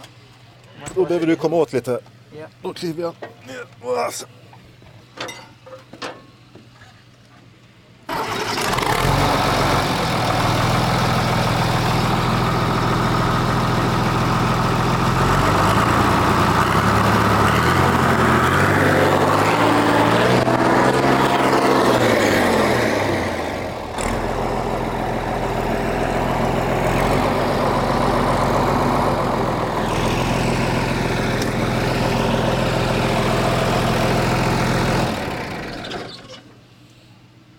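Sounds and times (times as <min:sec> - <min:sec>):
speech: 0:00.8 - 0:04.4
large engine with non-original exhaust starting, idling and revving: 0:08.1 - 0:36.3.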